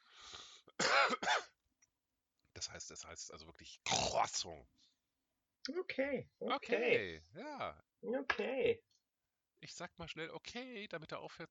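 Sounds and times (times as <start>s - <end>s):
person clearing throat imitating choking on bread: 0.8s - 1.5s
speech: 2.6s - 4.9s, 5.6s - 9.0s, 9.6s - 11.5s.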